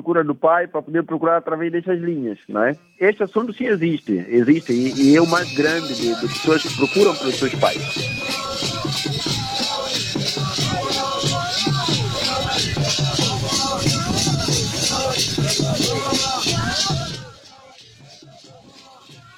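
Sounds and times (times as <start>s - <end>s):
speech: 0.0s - 9.1s
steady rhythmic pulse: 2.8s - 19.3s
street protest crowd with many voices shouting and calling: 5.0s - 19.3s.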